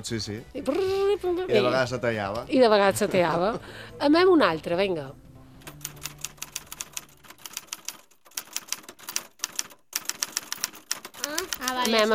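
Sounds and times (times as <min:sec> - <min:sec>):
speech: 0:00.0 - 0:05.2, 0:11.9 - 0:12.1
typewriter keys typing: 0:05.6 - 0:12.1.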